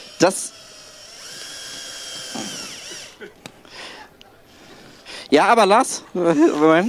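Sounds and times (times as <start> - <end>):
power drill driving in a screw: 0.0 - 3.7
speech: 0.2 - 0.6, 5.3 - 6.8.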